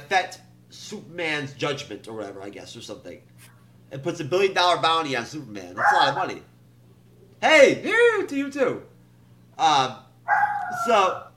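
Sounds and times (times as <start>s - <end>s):
faint steady hum: 0.0s - 11.3s
speech: 0.1s - 6.5s, 7.4s - 8.9s, 9.6s - 11.3s
dog barking: 5.8s - 6.3s, 10.3s - 11.3s.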